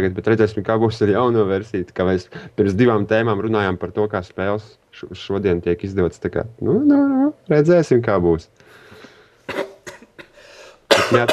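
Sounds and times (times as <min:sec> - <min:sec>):
speech: 0:00.0 - 0:08.6, 0:11.1 - 0:11.3
man coughing: 0:09.5 - 0:11.3.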